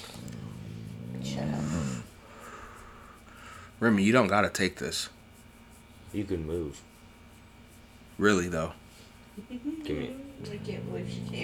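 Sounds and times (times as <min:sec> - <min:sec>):
dog growling while guarding a bone: 0:00.0 - 0:02.1, 0:09.8 - 0:11.4
speech: 0:03.8 - 0:05.2, 0:06.1 - 0:06.9, 0:08.2 - 0:08.8, 0:09.4 - 0:11.4.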